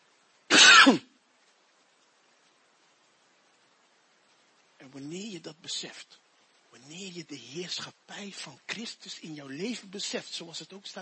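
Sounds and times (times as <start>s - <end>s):
loud raspy cough with throat clearing: 0.5s - 1.1s
speech: 0.9s - 1.1s, 5.0s - 11.0s.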